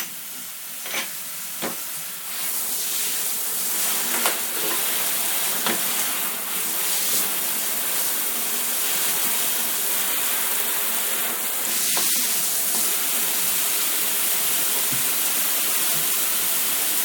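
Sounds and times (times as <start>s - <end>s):
shower spraying water into a bathtub to run a bath for children: 1.5s - 17.0s.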